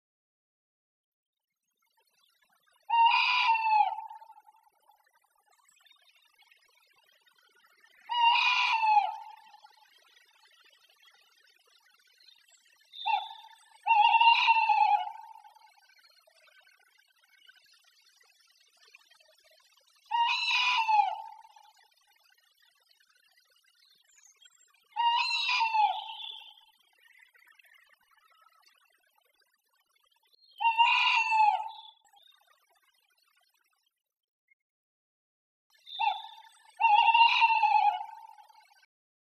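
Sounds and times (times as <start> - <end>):
tawny owl Strix aluco calling: 2.9 - 4.5, 8.1 - 9.8, 13.0 - 15.7, 20.1 - 21.7, 24.9 - 26.7, 30.6 - 32.0, 35.9 - 38.8.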